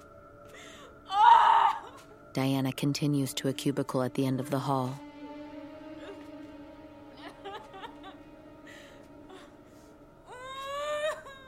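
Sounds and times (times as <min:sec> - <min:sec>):
woman sobbing in bed in a clinic: 0:00.6 - 0:02.2, 0:07.1 - 0:11.4
speech: 0:02.4 - 0:05.1.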